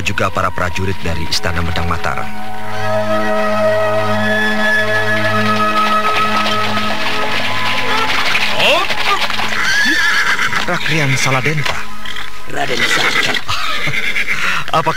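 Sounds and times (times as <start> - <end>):
steady droning music bed: 0.0 - 12.5
speech: 0.1 - 3.5, 10.7 - 11.8, 12.5 - 14.9
horse ridden beside a cart whinnying: 7.7 - 14.9.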